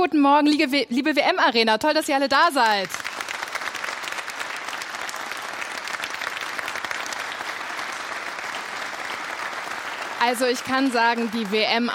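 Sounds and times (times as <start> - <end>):
speech: 0.0 - 3.2, 10.2 - 11.9
studio audience at a morning TV broadcast applauding: 2.6 - 11.9.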